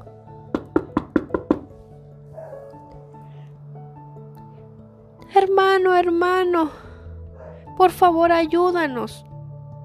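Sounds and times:
knocking on a wooden door: 0.5s - 1.7s
speech: 5.3s - 6.8s, 7.8s - 9.3s.

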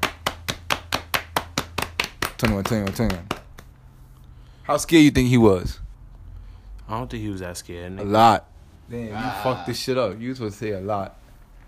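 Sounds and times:
hand clapping: 0.0s - 3.8s
speech: 2.4s - 3.4s, 4.7s - 5.8s, 6.9s - 11.2s
person's voice: 8.0s - 10.2s.

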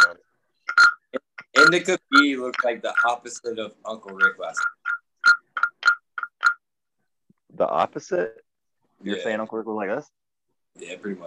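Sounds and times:
raspy frog-like croaks from a dab rig: 0.0s - 6.7s
speech: 1.6s - 4.7s, 7.6s - 8.4s, 9.0s - 10.2s, 10.8s - 11.2s.

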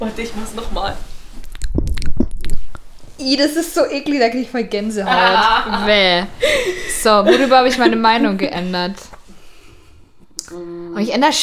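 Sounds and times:
speech: 0.0s - 1.1s, 3.2s - 9.1s, 10.5s - 11.4s
wet mouth smacking and chewing close to microphone: 1.4s - 3.0s
laughter: 5.0s - 8.6s.

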